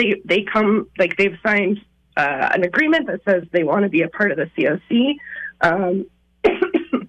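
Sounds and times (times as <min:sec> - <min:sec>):
speech: 0:00.0 - 0:06.7
woman's hoarse coughing fit: 0:06.5 - 0:07.0.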